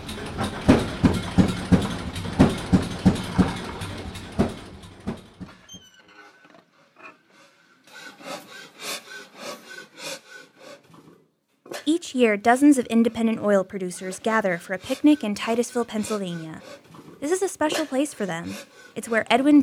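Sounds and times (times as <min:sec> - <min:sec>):
old dark green stationary engine on a wood pallet chugging: 0:00.0 - 0:05.7, 0:12.8 - 0:19.6
speech: 0:12.2 - 0:19.6.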